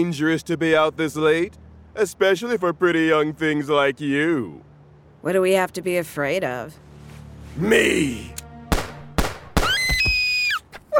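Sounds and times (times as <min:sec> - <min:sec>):
speech: 0:00.0 - 0:06.9, 0:07.6 - 0:08.4
gunshots during a late-night street attack: 0:08.7 - 0:10.1.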